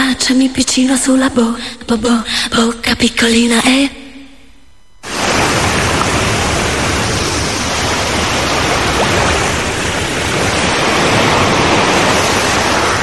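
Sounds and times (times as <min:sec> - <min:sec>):
speech: 0:00.3 - 0:04.0
sea waves roaring: 0:05.0 - 0:13.0.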